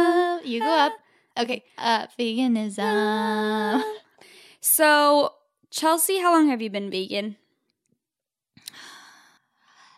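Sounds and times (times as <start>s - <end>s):
speech: 0.6s - 4.0s, 4.6s - 7.4s
heavy breathing into the microphone: 8.7s - 9.9s.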